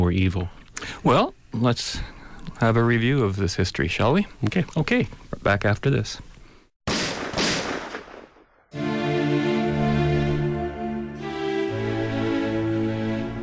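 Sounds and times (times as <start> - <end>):
speech: 0.1 - 6.3
gunshot: 6.9 - 8.7
sustained low musical tones: 8.8 - 13.4.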